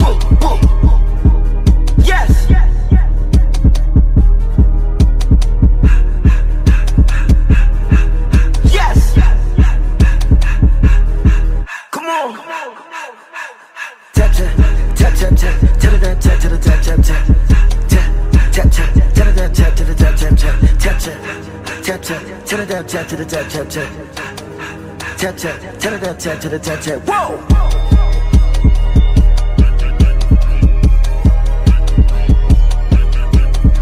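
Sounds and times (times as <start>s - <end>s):
sped up nightcore remix: 0.0s - 33.7s.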